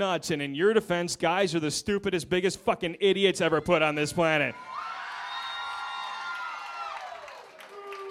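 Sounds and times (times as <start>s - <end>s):
speech: 0.0s - 4.8s
audience crowd screaming and whooping: 4.5s - 8.0s.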